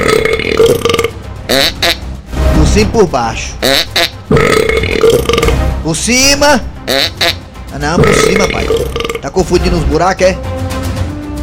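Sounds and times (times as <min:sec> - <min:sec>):
person burping: 0:00.0 - 0:02.0, 0:03.6 - 0:05.6, 0:06.9 - 0:07.4, 0:08.0 - 0:09.3
speech: 0:02.8 - 0:05.0, 0:05.8 - 0:10.6.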